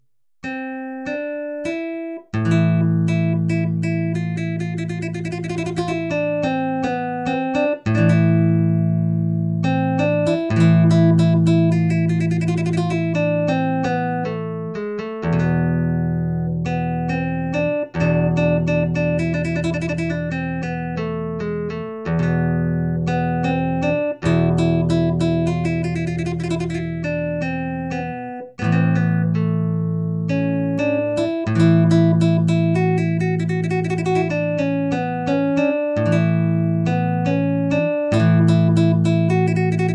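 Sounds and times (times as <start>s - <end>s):
simulated Spanish guitar improvisation: 0.0s - 39.9s.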